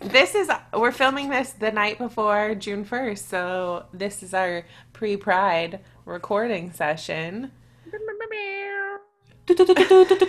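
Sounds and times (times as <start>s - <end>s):
speech: 0.1s - 8.5s, 9.5s - 10.2s
person doing a drawn-out nasal meow imitation: 7.9s - 9.1s.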